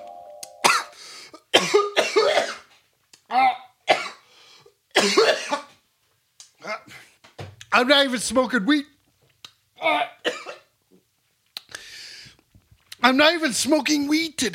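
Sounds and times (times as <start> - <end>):
person coughing harshly: 0.6 - 2.7, 3.9 - 4.2, 5.0 - 5.7, 10.2 - 10.7
wheezy breath: 0.9 - 1.4, 4.2 - 4.8, 11.7 - 12.4
speech: 7.8 - 8.9, 9.8 - 10.1, 13.1 - 14.5.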